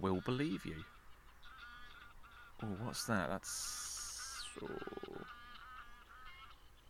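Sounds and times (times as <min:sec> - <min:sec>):
speech: 0:00.0 - 0:01.0, 0:02.6 - 0:03.9, 0:04.6 - 0:05.0
crow calling: 0:04.3 - 0:06.3.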